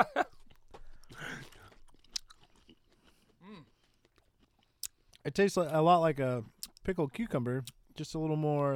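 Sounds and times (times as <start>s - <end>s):
crunchy chewing of pickled asparagus: 0.2s - 5.8s
speech: 5.2s - 8.7s.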